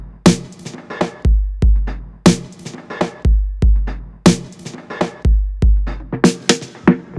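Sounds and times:
electro dub snare drum kit: 0:00.3 - 0:01.4, 0:02.3 - 0:03.4, 0:04.3 - 0:07.1.

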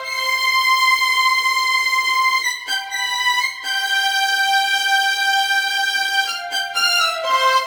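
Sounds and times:
strings: 0:00.0 - 0:07.6.

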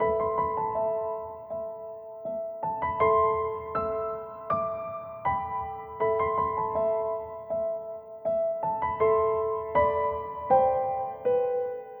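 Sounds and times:
grand piano: 0:00.0 - 0:11.9.

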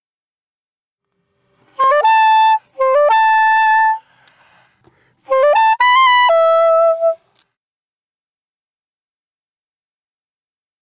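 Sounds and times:
saxophone solo: 0:01.6 - 0:07.4.

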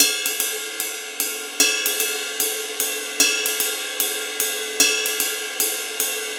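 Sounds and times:
ride cymbals in reggae: 0:00.0 - 0:06.3.

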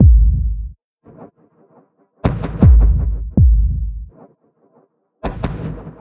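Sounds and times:
deep punchy ambient drum loop: 0:00.0 - 0:00.7, 0:02.3 - 0:04.1.

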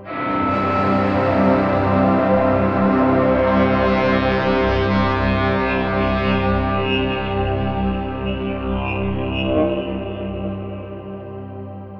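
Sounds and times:
dark ambient sound effect: 0:00.0 - 0:11.9.

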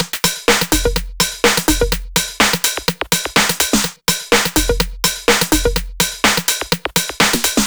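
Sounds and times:
house music beat: 0:00.0 - 0:07.6.

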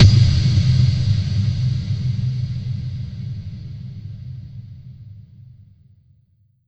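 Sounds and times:
techno-trance hit: 0:00.0 - 0:04.4.

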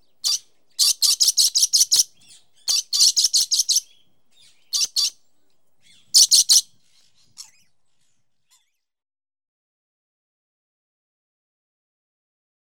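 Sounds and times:
parrot chirping: 0:00.2 - 0:05.2, 0:05.8 - 0:08.8.

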